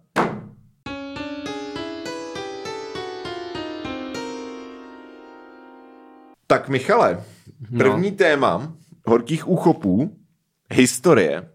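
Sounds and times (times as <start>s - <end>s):
dull thump: 0.1s - 0.7s
short podcast musical jingle with bright ringing notes: 0.9s - 6.4s
speech: 6.5s - 11.5s.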